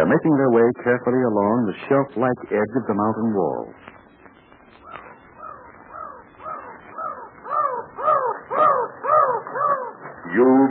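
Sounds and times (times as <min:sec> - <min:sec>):
speech: 0:00.0 - 0:03.9, 0:10.3 - 0:10.7
mountain crows cawing: 0:04.8 - 0:10.3.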